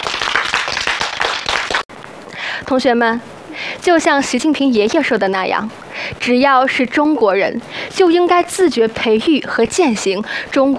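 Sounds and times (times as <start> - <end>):
students applauding in a school setting: 0.0 - 1.9
speech: 2.7 - 10.7.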